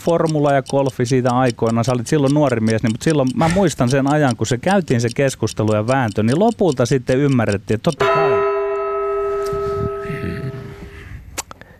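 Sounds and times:
speech: 0.0 - 8.4
bright bell chime marking a topic change: 8.0 - 11.0.

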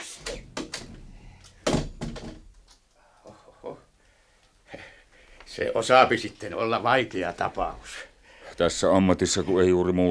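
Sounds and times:
door opening and closing as someone leaves: 0.0 - 2.8
door thud and rattle: 0.3 - 2.6
speech: 5.6 - 10.0.

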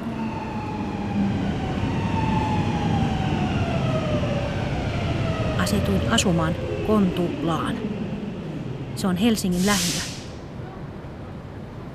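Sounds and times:
faint siren wailing in rising and falling tones: 0.0 - 8.9
low city rumble in Helsinki Finland: 0.0 - 11.9
speech: 5.7 - 7.9, 9.0 - 10.1.

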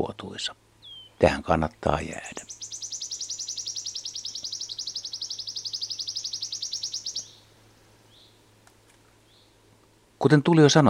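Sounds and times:
Wood Warbler song, fast dry high-pitched trill: 0.0 - 10.0.

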